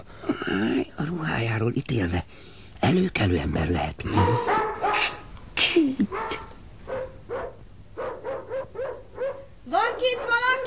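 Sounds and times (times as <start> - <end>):
speech: 0.5 - 6.4
dog barking: 3.5 - 5.2, 6.1 - 10.6.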